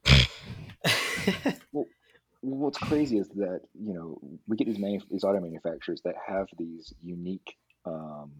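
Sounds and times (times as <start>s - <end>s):
person fake coughing: 0.0s - 1.6s, 2.8s - 3.1s
speech: 0.8s - 1.6s, 2.5s - 8.3s.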